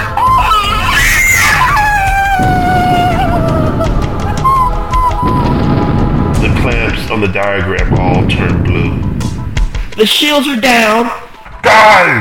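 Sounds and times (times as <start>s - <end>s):
woman screaming: 0.0s - 5.6s
dense rumbling noise: 0.0s - 11.1s
speech: 7.2s - 9.0s, 10.0s - 12.2s.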